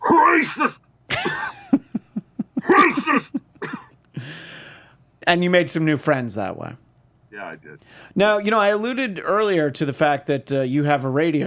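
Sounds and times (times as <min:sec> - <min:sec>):
person imitating coughing and throat clearing with their voice: 0:00.1 - 0:01.5, 0:02.6 - 0:04.0
speech: 0:00.2 - 0:01.4, 0:05.3 - 0:06.8, 0:07.4 - 0:11.4.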